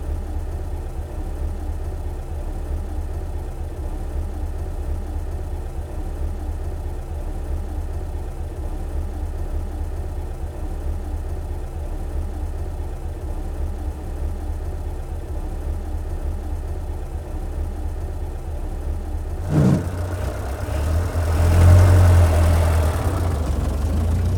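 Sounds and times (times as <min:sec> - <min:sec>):
car engine idling: 0:00.0 - 0:24.3
car gear shift: 0:19.4 - 0:20.1
car driving away: 0:19.4 - 0:24.3.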